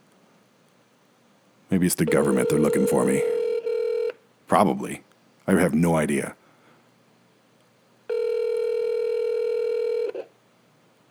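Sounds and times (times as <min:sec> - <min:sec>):
speech: 0:01.7 - 0:03.4, 0:04.5 - 0:06.4
steady loud electronic telephone line tone while calling a number: 0:02.0 - 0:04.2, 0:08.1 - 0:10.2.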